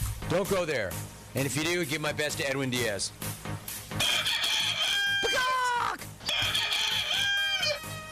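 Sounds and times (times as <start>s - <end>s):
speech: 0.3s - 3.3s
rooster crowing: 4.0s - 5.6s, 6.2s - 8.1s.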